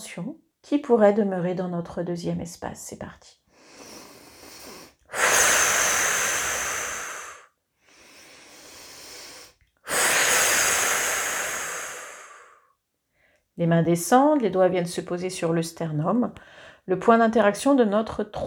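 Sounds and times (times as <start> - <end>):
speech: 0.1 - 3.4, 13.6 - 18.4
person breathing deeply during a guided relaxation exercise: 3.5 - 13.4.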